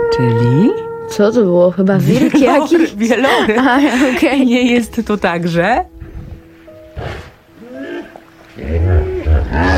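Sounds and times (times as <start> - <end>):
speech: 0.2 - 5.9, 8.5 - 9.7
laughter: 2.0 - 4.5
hippopotamus calling with deep rough grunting bellows: 6.9 - 9.7.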